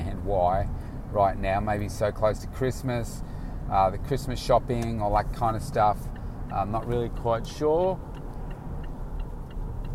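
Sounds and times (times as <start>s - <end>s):
car moving in busy freeway traffic: 0.0s - 9.9s
speech: 0.3s - 8.1s
car turn signal ticking while changing lanes: 3.8s - 9.9s.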